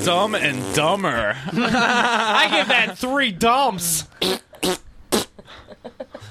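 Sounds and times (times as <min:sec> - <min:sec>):
fart: 0:00.0 - 0:01.1, 0:04.2 - 0:05.4
speech: 0:00.0 - 0:04.8
laughter: 0:01.3 - 0:03.1.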